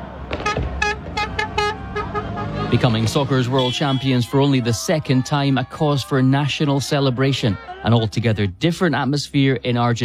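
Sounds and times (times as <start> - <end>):
car horns honking in a street celebration: 0.0 - 4.7
low rumble of street traffic: 0.0 - 10.0
firecrackers in a street celebration: 0.2 - 1.7
speech: 2.8 - 10.0.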